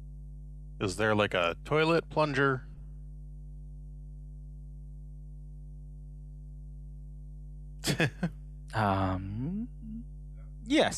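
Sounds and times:
steady low electrical hum: 0.0s - 10.9s
speech: 0.8s - 2.7s, 8.0s - 9.5s, 10.7s - 10.9s
laughter: 7.8s - 9.0s
long wavering vocal groan: 8.8s - 10.0s.

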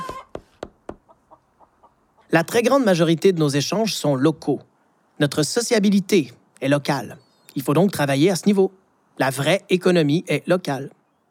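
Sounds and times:
chicken clucking: 0.0s - 0.4s, 1.0s - 2.3s
speech: 2.3s - 11.0s.

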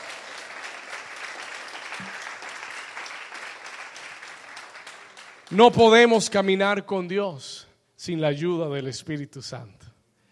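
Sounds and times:
church audience applauding loudly: 0.0s - 5.9s
speech: 5.5s - 9.8s.

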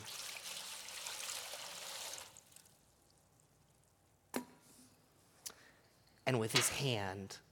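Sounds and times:
water pouring into a basin: 0.0s - 2.9s
speech: 6.4s - 7.5s.

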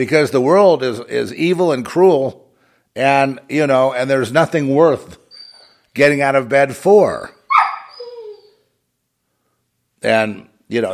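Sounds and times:
speech: 0.0s - 2.4s, 3.0s - 5.2s, 6.0s - 7.4s, 10.0s - 10.9s
dog barking with whiny falling tone: 7.5s - 8.5s.

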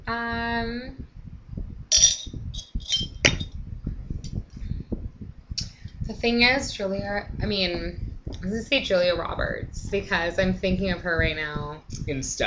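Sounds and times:
speech: 0.1s - 1.1s, 6.2s - 12.4s
glasses clinking in a toast: 1.9s - 3.5s.

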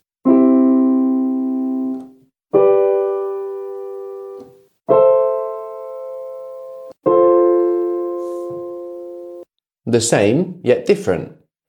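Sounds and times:
bright electronic I-V-vi-IV chord progression in C major: 0.3s - 9.5s
speech: 9.9s - 11.4s.

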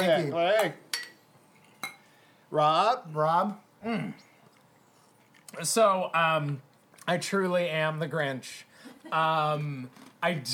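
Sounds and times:
speech: 0.0s - 0.8s, 2.5s - 4.3s, 5.5s - 10.5s
glasses clinking together in a toast: 0.9s - 2.1s.

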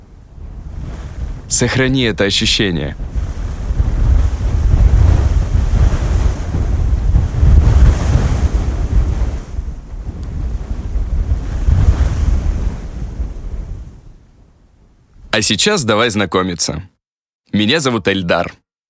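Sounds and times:
sea waves and surf: 0.0s - 15.3s
gusty wind buffeting: 0.0s - 15.4s
speech: 1.5s - 3.1s, 15.4s - 16.9s, 17.5s - 18.6s.

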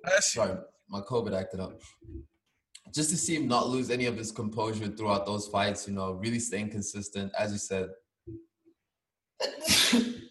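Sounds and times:
speech: 0.0s - 8.5s, 9.4s - 10.2s
sneeze: 9.4s - 10.2s.

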